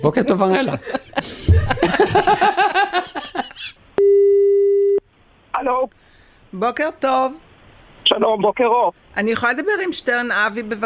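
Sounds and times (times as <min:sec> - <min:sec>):
speech: 0:00.0 - 0:03.0, 0:06.5 - 0:07.4, 0:08.1 - 0:10.8
laughter: 0:00.3 - 0:03.8
telephone line tone while calling a lottery winner: 0:04.0 - 0:05.0.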